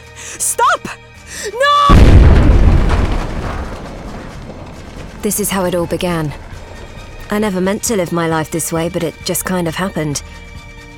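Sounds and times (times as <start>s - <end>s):
grenade explosion: 1.9s - 7.3s
speech: 5.2s - 6.5s, 7.3s - 10.4s.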